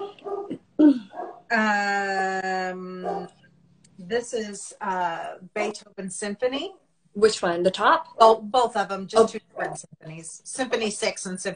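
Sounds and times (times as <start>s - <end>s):
dogs whining: 0.0s - 1.5s
speech: 1.5s - 2.2s, 4.1s - 11.5s.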